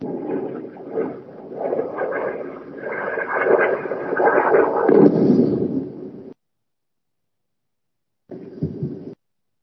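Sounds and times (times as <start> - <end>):
explosions of rockets and Iron Dome interceptors over the Gaza Strip: 0.0 - 6.4.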